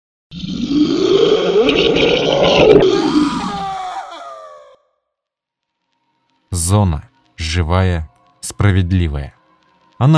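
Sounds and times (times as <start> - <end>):
chimera roaring: 0.4 - 3.8
speech: 6.7 - 9.4.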